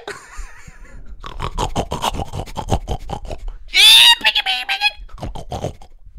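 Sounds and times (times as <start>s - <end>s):
woman imitating pig grunting and snorting: 1.2s - 3.7s, 5.1s - 6.0s
woman imitating pig squeals in a hog-calling contest: 3.7s - 5.1s.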